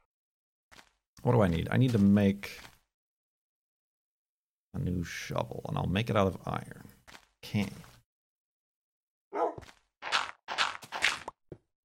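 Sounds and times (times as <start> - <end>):
video game creepers walking around upstairs: 0.7 - 2.9, 6.4 - 8.0, 9.4 - 11.8
speech: 1.2 - 2.7, 4.8 - 7.9.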